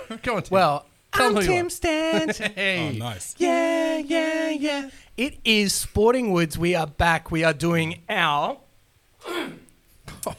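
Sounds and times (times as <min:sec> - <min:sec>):
speech: 0:00.1 - 0:08.6
person giving a raspy throat-clearing cough: 0:09.2 - 0:10.3.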